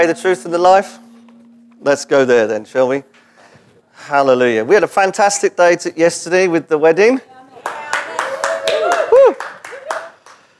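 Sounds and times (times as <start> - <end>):
speech: 0.0 - 1.1, 1.8 - 3.2, 4.0 - 7.3
audience clapping in a steady rhythmic beat: 7.6 - 10.5.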